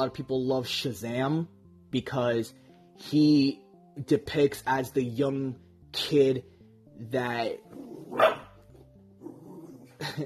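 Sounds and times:
speech: 0.0 - 8.4, 10.0 - 10.2
dog barking: 8.1 - 8.6.

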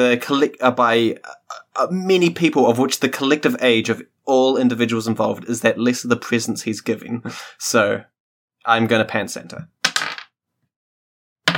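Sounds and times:
speech: 0.0 - 9.8
two dice clattering across a hard table: 9.8 - 10.3.

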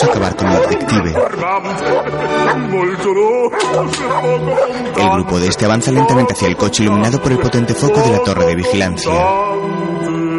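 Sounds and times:
guard dogs barking angrily at a man leaving a house: 0.0 - 2.7, 3.5 - 6.5
speech: 0.1 - 10.2.

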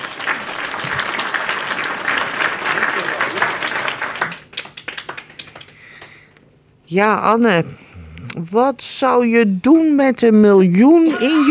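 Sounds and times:
audience applause: 0.0 - 6.2
speech: 6.9 - 7.8, 8.4 - 11.4.

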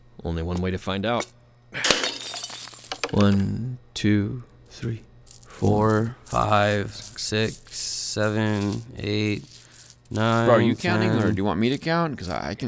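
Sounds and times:
speech: 0.2 - 1.9, 3.1 - 12.6
ceramic piggy bank smashing in a garage: 1.2 - 3.6, 4.7 - 12.6
coins clattering and jingling out of a piggy bank: 1.2 - 3.6, 4.6 - 12.6.

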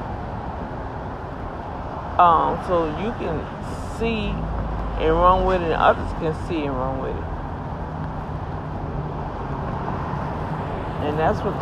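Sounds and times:
bus engine rumble approaching a bus stop: 0.0 - 11.6
street traffic noise: 0.0 - 11.6
speech: 2.2 - 7.3, 11.0 - 11.6.

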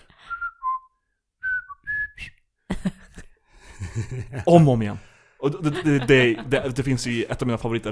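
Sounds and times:
woman whistling imitating a stock bird call: 0.2 - 2.4
laughter: 2.7 - 4.6, 5.4 - 7.3
speech: 4.0 - 7.9.

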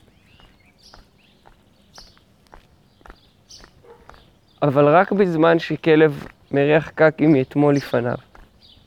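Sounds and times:
faint bird chirps: 0.0 - 4.7
footsteps of a person walking down to a stream crunching along a path: 0.0 - 8.8
speech: 4.6 - 8.3.

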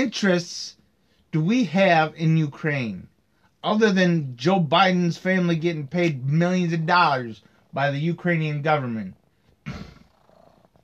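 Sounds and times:
speech: 0.0 - 9.9
cat purring: 9.7 - 10.8.

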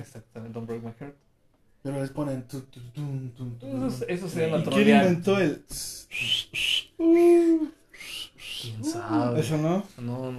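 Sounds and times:
speech: 0.4 - 1.2, 1.8 - 7.8, 9.0 - 10.3
person whistling a melody: 6.1 - 7.4, 8.0 - 8.8.

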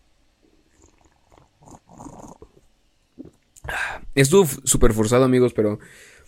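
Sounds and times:
person slurping a sip of coffee: 0.7 - 3.4
mouth and breath noises: 0.7 - 4.1
speech: 3.7 - 6.1.

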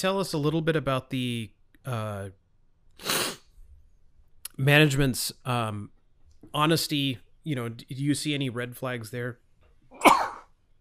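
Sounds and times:
speech: 0.0 - 2.4, 4.6 - 10.1
person sneezing: 3.0 - 3.5, 10.0 - 10.5.

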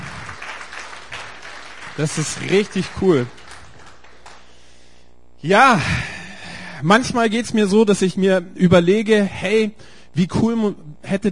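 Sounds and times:
audience clapping: 0.0 - 4.8
speech: 2.0 - 3.4, 5.4 - 6.1, 6.8 - 11.2.

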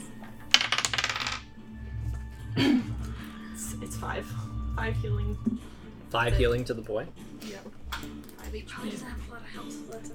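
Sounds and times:
eight-sided die rolled on a table: 0.5 - 1.5
speech: 2.6 - 2.9, 4.0 - 10.1.

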